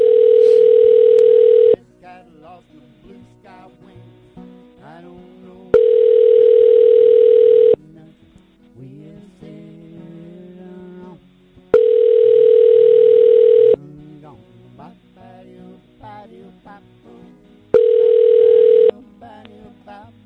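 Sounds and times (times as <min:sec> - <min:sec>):
telephone ringback tone of a call placed from the UK: 0:00.0 - 0:01.8, 0:05.8 - 0:07.8, 0:11.7 - 0:13.8, 0:17.8 - 0:18.9.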